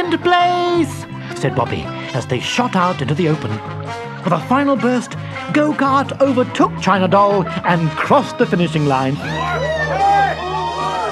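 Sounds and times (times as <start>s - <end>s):
speech: 0.1s - 9.7s
crowd cheering and shouting: 9.2s - 11.1s.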